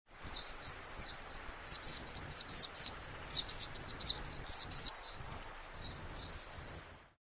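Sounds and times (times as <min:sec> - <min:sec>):
brown-bellied swallow calling: 0:00.3 - 0:06.8.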